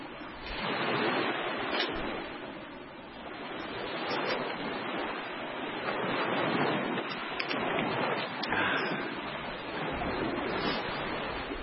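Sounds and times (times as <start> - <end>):
rough ocean surf waves washing and crashing: 0.0 - 11.6.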